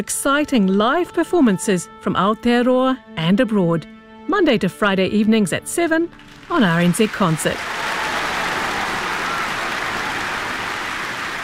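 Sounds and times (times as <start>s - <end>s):
speech: 0.0s - 7.8s
audience applause: 6.2s - 11.4s.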